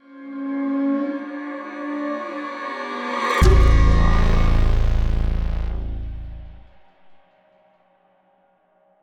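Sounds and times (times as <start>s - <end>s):
riser stinger synth: 3.3s - 7.2s.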